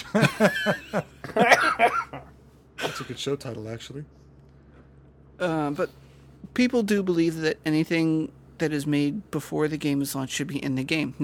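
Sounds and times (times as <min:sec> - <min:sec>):
laughter: 0:00.0 - 0:03.2
speech: 0:00.1 - 0:01.1, 0:03.2 - 0:04.2, 0:05.4 - 0:06.0, 0:06.6 - 0:11.2
man coughing: 0:01.2 - 0:03.2.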